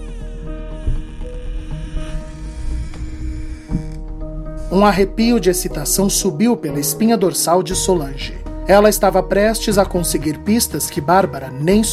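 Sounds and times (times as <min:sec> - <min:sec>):
front door handle of a house rattling and creaking: 0:00.1 - 0:04.6
steady low hum: 0:00.2 - 0:04.8
speech: 0:04.7 - 0:11.9.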